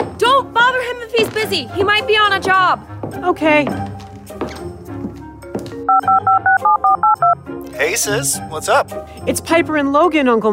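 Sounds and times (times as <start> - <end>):
speech: 1.2 - 3.9, 7.8 - 10.5
touch-tone keypad beeps of a phone being dialed: 5.9 - 7.4.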